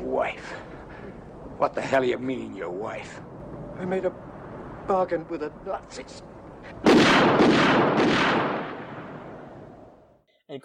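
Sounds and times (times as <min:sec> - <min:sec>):
speech: 0:00.2 - 0:00.7, 0:01.6 - 0:04.3, 0:04.9 - 0:07.9
gunshot in a war film scene: 0:06.8 - 0:09.4.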